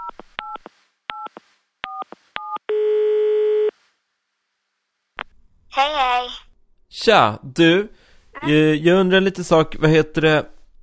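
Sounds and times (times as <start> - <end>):
long steady telephone ringing tone: 2.7 - 3.7
speech: 5.8 - 10.5.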